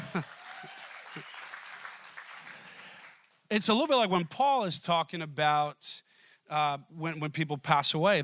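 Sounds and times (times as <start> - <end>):
crowd of people clapping: 0.0 - 3.4
speech: 3.5 - 8.2.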